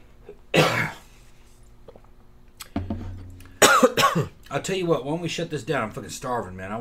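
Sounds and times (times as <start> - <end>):
harsh hacking cough: 0.6 - 1.0, 3.5 - 4.4
speech: 3.9 - 6.8.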